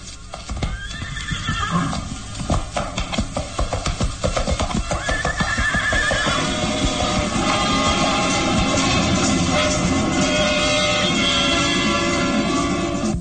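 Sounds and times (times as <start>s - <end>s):
hooves clip-clopping as two riders move off at a slow walk: 0.0s - 13.1s
shrill horse whinnies: 0.6s - 2.1s, 4.9s - 6.6s
horses neighing and snorting: 0.6s - 8.2s.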